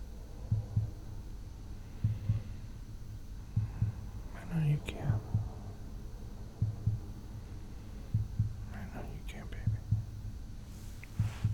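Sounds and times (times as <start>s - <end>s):
low steady hum: 0.0s - 11.5s
heartbeat heard through a chest: 0.1s - 11.5s.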